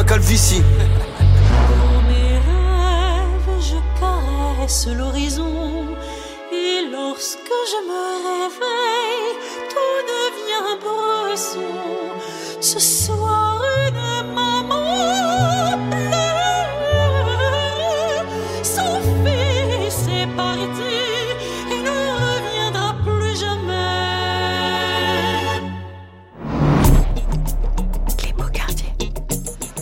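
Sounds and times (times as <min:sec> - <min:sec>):
deep steady bass line: 0:00.0 - 0:05.6, 0:26.4 - 0:29.8
operatic voice with wide vibrato sampled from a Russian opera: 0:00.0 - 0:25.9
speech: 0:00.2 - 0:01.1, 0:04.7 - 0:16.1.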